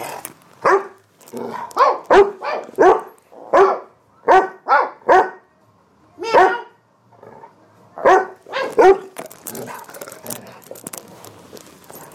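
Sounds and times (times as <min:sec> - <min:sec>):
female dog barking: 0:00.6 - 0:05.5, 0:06.2 - 0:06.8, 0:08.0 - 0:09.1.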